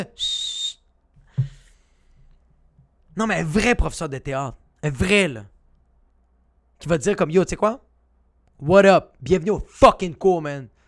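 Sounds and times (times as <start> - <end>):
speech: 0.0 - 0.4, 3.2 - 5.5, 6.8 - 7.8, 8.6 - 10.7
shrill whistle blast: 0.0 - 0.9
low thump: 1.2 - 1.6.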